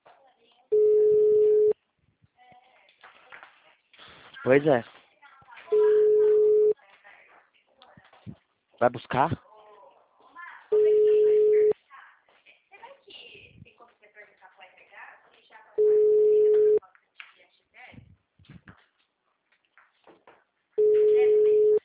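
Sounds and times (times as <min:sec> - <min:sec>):
ringback tone of an unanswered telephone call: 0:00.7 - 0:01.8, 0:05.7 - 0:06.8, 0:10.7 - 0:11.7, 0:15.8 - 0:16.8, 0:20.8 - 0:21.8
speech: 0:04.4 - 0:05.0, 0:08.8 - 0:09.4.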